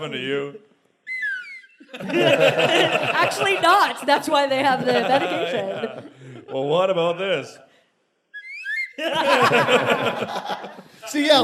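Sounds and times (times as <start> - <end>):
speech: 0.0 - 0.7, 1.9 - 7.6, 9.0 - 11.4
short slide whistle playing a pitch-bending tune: 1.0 - 1.9
loud laughter: 1.8 - 6.1, 8.9 - 10.9.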